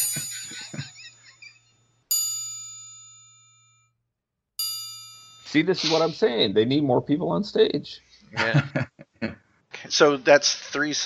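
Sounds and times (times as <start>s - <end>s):
brief shimmering jangle: 0.0s - 3.9s, 4.6s - 6.4s
triangle struck with a bright metallic ding: 0.0s - 3.9s, 4.6s - 6.2s
laughter: 0.2s - 1.4s, 5.6s - 6.2s, 8.3s - 9.4s
speech: 5.5s - 9.0s, 9.9s - 11.0s.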